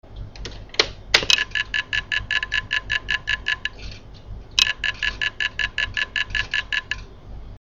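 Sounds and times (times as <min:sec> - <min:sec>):
IBM DJSA 220 hard drive running: 0:00.0 - 0:07.5.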